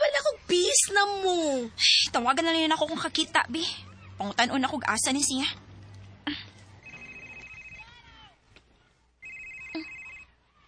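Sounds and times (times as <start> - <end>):
speech: 0.5 - 5.7
cellphone ringing in electronic trilling bursts: 6.8 - 7.9, 9.2 - 10.4.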